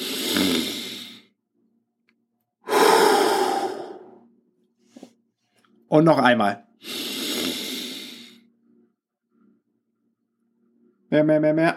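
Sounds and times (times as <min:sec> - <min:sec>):
deep breathing in through nose and out through mouth during a guided exercise: 0:00.0 - 0:01.3, 0:02.6 - 0:04.3, 0:06.8 - 0:09.4
speech: 0:05.9 - 0:07.0, 0:11.1 - 0:11.7.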